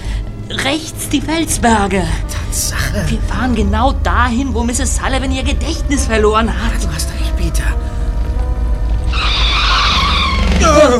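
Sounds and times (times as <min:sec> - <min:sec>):
steady low car engine rumble: 0:00.0 - 0:10.9
speech: 0:00.5 - 0:07.9, 0:10.6 - 0:10.9
car tires screeching as the car skids with its rear wheel jammed: 0:03.6 - 0:10.9.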